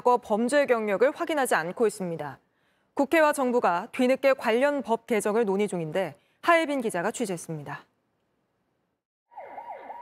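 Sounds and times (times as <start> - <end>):
speech: 0.0 - 2.4, 3.0 - 7.9
ambulance siren wailing: 9.3 - 9.9.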